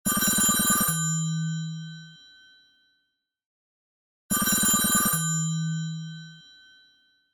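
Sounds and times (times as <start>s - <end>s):
telephone bell ringtone on a Samsung Galaxy S25 Ultra: 0.1s - 2.8s, 4.3s - 7.3s.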